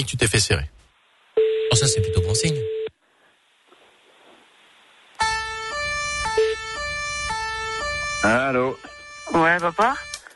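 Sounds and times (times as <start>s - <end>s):
speech: 0.0s - 0.8s, 1.7s - 2.8s, 8.2s - 10.1s
two-tone police siren: 5.2s - 10.3s.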